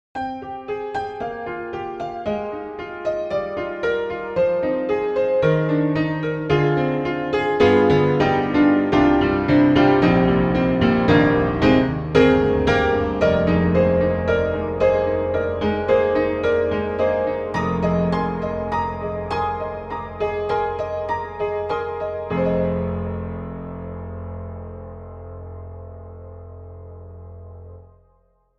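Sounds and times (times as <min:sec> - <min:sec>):
modern upright piano playing: 0:00.2 - 0:28.0.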